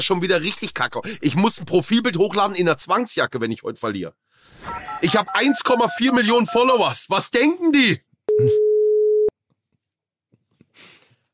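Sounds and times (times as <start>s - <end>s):
speech: 0.0s - 8.6s
telephone dial tone while placing a call: 8.3s - 9.3s.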